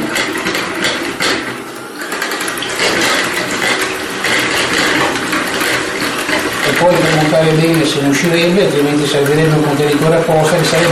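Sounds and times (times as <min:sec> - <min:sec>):
electric hand mixer whipping cream with sugar in a bowl: 0:00.0 - 0:10.8
speech: 0:07.3 - 0:10.8.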